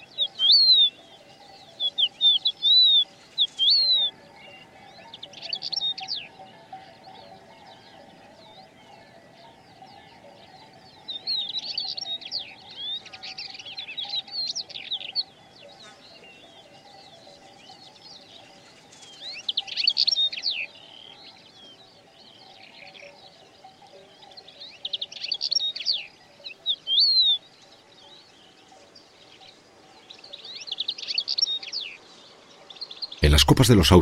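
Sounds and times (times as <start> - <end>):
faint steady tone: 0.0 - 34.0
crested lark calling from a stone pile: 0.2 - 1.0
speech: 33.4 - 34.0.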